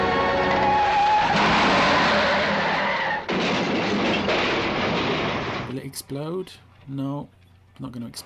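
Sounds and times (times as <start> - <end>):
car engine roaring in a car chase: 0.0 - 5.6
tyres skidding around a sharp hairpin bend: 0.0 - 5.7
speech: 6.0 - 8.2.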